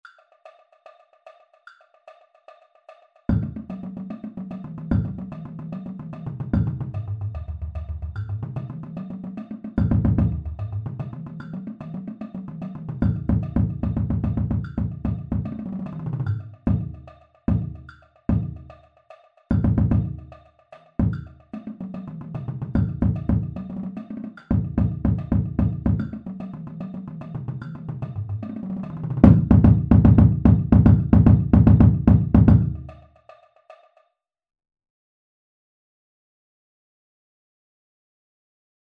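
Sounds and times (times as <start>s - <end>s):
triplet bass drum at 148 bpm: 3.3s - 4.0s, 4.7s - 5.5s, 6.3s - 8.9s, 9.8s - 11.5s, 12.9s - 18.7s, 19.5s - 20.3s, 21.0s - 21.3s, 22.2s - 23.9s, 24.5s - 26.4s, 27.4s - 33.0s.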